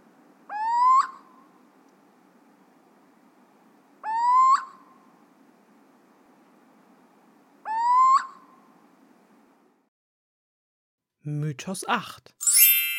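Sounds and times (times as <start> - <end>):
quiet low hum: 0.0 - 9.9
owl hooting with short rising hoarse hoots: 0.5 - 1.5, 4.0 - 5.0, 7.6 - 8.6
speech: 11.3 - 12.5.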